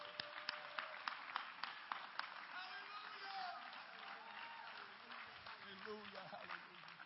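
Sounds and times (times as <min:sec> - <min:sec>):
audience clapping their hands in a steady rhythm: 0:00.0 - 0:07.0
crowd cheering: 0:00.0 - 0:07.0.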